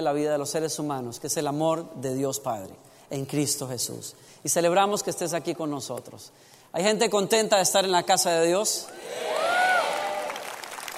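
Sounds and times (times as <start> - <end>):
speech: 0.0 - 9.5
audience clapping and cheering: 8.9 - 10.9
high gliding whoop: 9.0 - 10.5.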